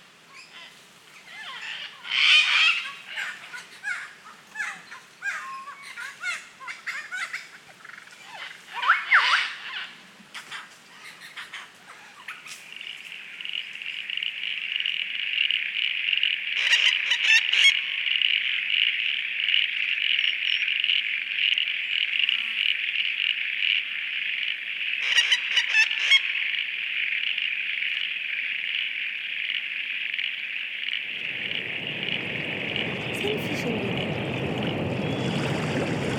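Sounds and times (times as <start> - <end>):
dense insect drone in Australia: 0.0 - 36.1
birds calling in the wild in Australia: 0.3 - 14.6, 24.8 - 26.6, 30.2 - 36.1
low rushing roar: 31.1 - 36.1.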